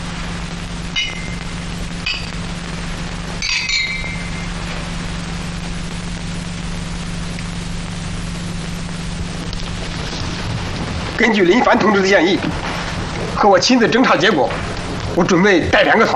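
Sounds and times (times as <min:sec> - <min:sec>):
low mechanical hum: 0:00.0 - 0:16.1
glasses clinking in a toast: 0:03.4 - 0:04.2
speech: 0:11.2 - 0:12.7, 0:13.4 - 0:16.1.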